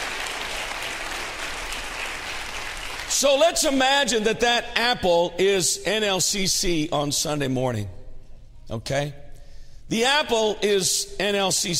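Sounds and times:
church audience clapping hands: 0:00.0 - 0:03.3
speech: 0:03.2 - 0:08.0, 0:08.7 - 0:09.2, 0:09.9 - 0:11.7.

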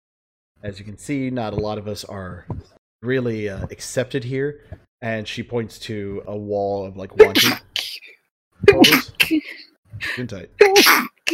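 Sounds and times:
speech: 0:00.6 - 0:07.7, 0:08.6 - 0:11.2
person sneezing: 0:07.2 - 0:08.1, 0:08.7 - 0:09.6, 0:10.6 - 0:11.3.

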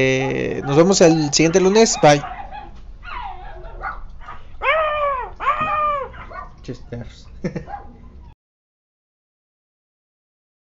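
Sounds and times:
speech: 0:00.0 - 0:02.4, 0:06.7 - 0:07.9
dogs barking with drawn-out howling barks: 0:00.0 - 0:08.4
dog yips: 0:00.2 - 0:06.6
laughter: 0:07.4 - 0:07.8.

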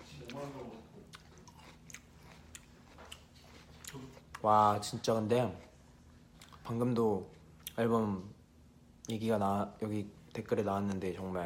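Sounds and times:
crunchy potato chips being chewed: 0:00.1 - 0:07.8
speech: 0:04.0 - 0:05.7, 0:06.7 - 0:08.4, 0:09.1 - 0:11.4.

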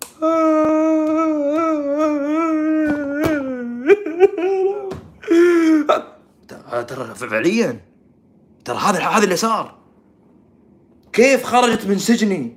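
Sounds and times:
child crying and wailing: 0:00.2 - 0:06.1
speech: 0:06.8 - 0:07.9, 0:08.7 - 0:09.8, 0:11.2 - 0:12.5.

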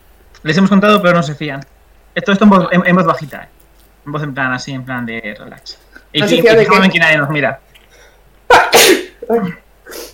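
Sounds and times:
speech: 0:00.4 - 0:07.6, 0:08.5 - 0:10.1
sneeze: 0:08.5 - 0:09.2.

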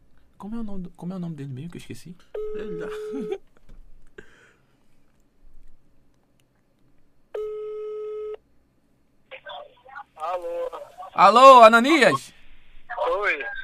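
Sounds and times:
speech: 0:00.4 - 0:03.5, 0:11.2 - 0:12.4
telephone ringing tone while a call connects: 0:02.4 - 0:03.4, 0:07.4 - 0:08.4.

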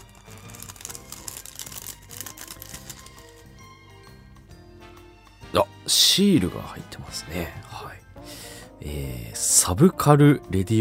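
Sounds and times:
small plastic bag holding stickers crinkling as it is opened: 0:00.0 - 0:03.5
soft music: 0:00.0 - 0:10.7
speech: 0:05.5 - 0:08.0, 0:08.8 - 0:10.7.

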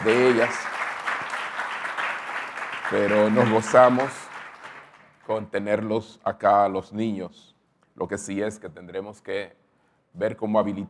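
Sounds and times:
speech: 0:00.0 - 0:00.8, 0:02.9 - 0:04.2, 0:05.3 - 0:10.8
crowd applauding: 0:00.0 - 0:05.2.

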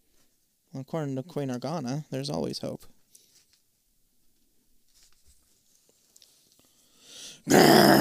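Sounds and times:
speech: 0:00.8 - 0:02.9, 0:07.4 - 0:07.8
monster growl: 0:07.5 - 0:07.9.

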